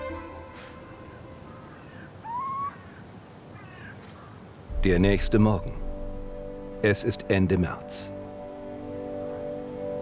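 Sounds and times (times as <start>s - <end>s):
owl hooting in a barn: 1.0s - 4.3s
speech: 4.8s - 5.8s, 6.8s - 8.2s.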